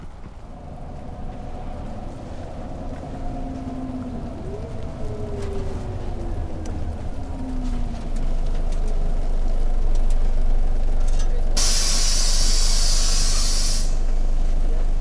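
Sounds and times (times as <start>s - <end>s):
rain pattering: 0.0s - 11.6s
low traffic rumble: 0.0s - 15.0s
loud bright hiss of air bursting: 11.6s - 14.1s.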